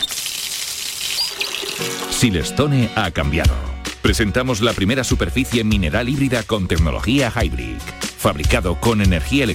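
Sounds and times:
water streaming from a tap: 0.0s - 2.3s
brief squeaky tone: 1.1s - 1.5s
speech: 2.2s - 9.5s.

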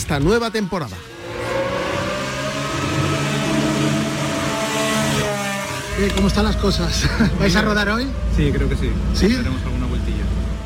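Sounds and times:
speech: 0.1s - 1.1s, 6.0s - 9.8s
Aston Martin Formula 1 car engine revving: 1.0s - 10.6s.

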